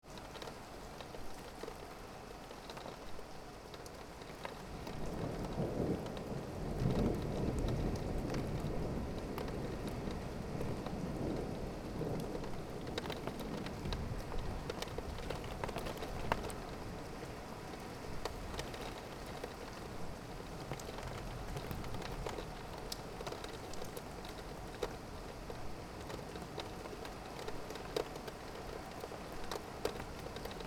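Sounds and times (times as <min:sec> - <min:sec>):
rain heard out of a window: 0:00.0 - 0:30.6
thunder: 0:04.8 - 0:15.4.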